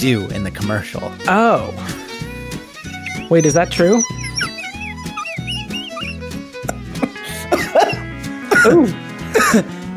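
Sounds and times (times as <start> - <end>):
speech: 0.0 - 2.0, 3.3 - 4.2, 8.6 - 9.8
maniacal laughing: 3.0 - 6.2, 7.0 - 8.0
person coughing harshly: 7.0 - 9.7.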